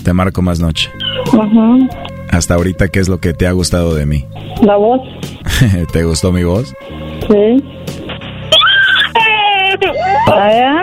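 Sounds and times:
speech: 0.0 - 8.0, 10.3 - 10.8
person fake-crying like a small child over a lollipop: 8.5 - 10.4
laughter: 8.8 - 10.3.

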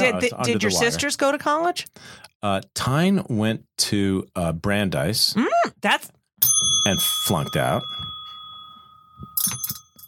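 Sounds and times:
speech: 0.0 - 8.0
small bell ringing: 6.4 - 10.0.

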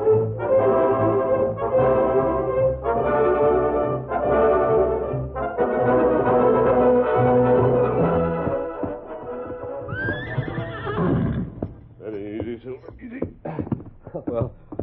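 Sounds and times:
steady score music: 0.0 - 14.8
horse hooves clopping: 6.2 - 14.8
horse giving a loud shaky whinny: 9.6 - 11.8.

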